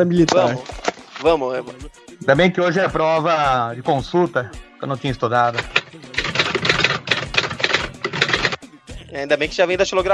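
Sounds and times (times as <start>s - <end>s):
speech: 0.0s - 6.0s, 9.1s - 10.1s
typewriter keys clattering: 5.6s - 8.6s.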